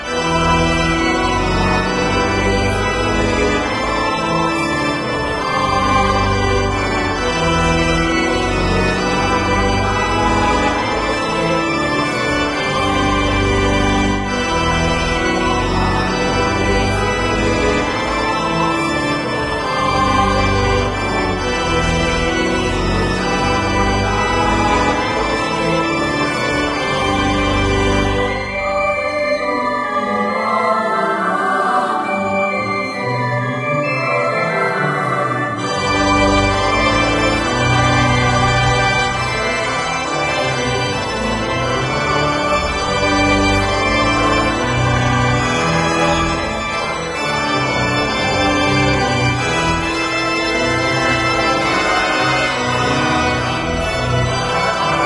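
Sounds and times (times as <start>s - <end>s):
organ loop: 0.0s - 55.0s.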